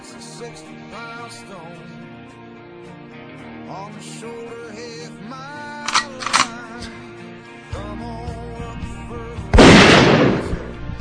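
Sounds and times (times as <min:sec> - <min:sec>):
speech: 0:00.4 - 0:02.1, 0:03.7 - 0:07.0
shotgun blast: 0:09.6 - 0:10.8.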